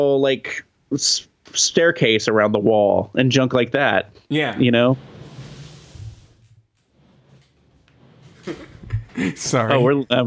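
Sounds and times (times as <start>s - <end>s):
speech: 0.0s - 5.1s, 9.2s - 10.2s
office chair rolling back across the floor: 4.8s - 9.2s.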